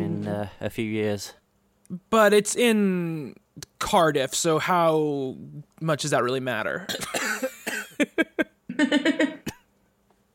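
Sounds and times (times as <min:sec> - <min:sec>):
speech: 0:00.3 - 0:07.4, 0:08.8 - 0:09.4
person coughing harshly: 0:06.9 - 0:08.3, 0:09.0 - 0:09.7.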